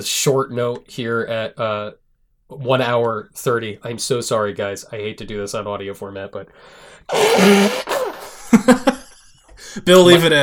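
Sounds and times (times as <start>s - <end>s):
speech: 0.0s - 7.9s, 8.6s - 8.9s, 9.8s - 10.4s
person blowing nose into a tissue during allergy flare-up: 7.1s - 8.4s.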